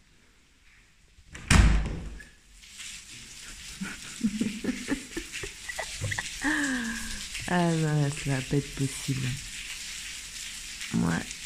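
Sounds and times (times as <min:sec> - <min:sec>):
heavy rain pouring down outside in the dark: 0:02.5 - 0:11.4
laughter: 0:03.6 - 0:07.1
voice-like sound: 0:04.3 - 0:09.4
speech: 0:07.5 - 0:09.5, 0:11.0 - 0:11.4.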